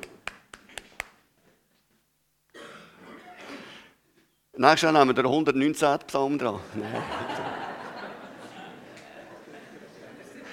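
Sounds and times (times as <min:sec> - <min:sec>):
applause: 0:00.0 - 0:01.1
sharp claps or taps: 0:00.0 - 0:01.2
speech: 0:04.6 - 0:07.3
laughter: 0:06.6 - 0:10.5.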